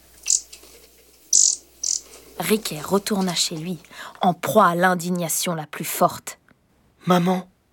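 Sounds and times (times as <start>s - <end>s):
canary chirping: 0.2s - 0.6s, 1.3s - 2.2s
speech: 2.4s - 6.4s, 7.1s - 7.5s.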